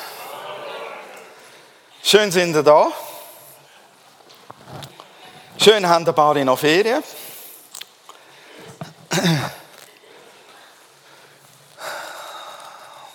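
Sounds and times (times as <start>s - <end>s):
speech: 2.0s - 3.0s, 5.6s - 7.2s
children coughing: 9.1s - 9.7s.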